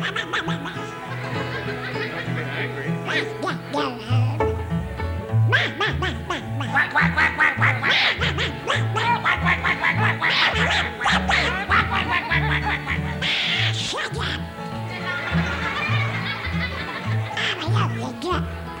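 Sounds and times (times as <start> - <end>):
voice imitating a duck quacking: 0.0 - 1.2, 2.2 - 4.5, 5.5 - 14.6, 17.2 - 18.6
snickering laughter: 0.0 - 4.0, 5.5 - 18.4.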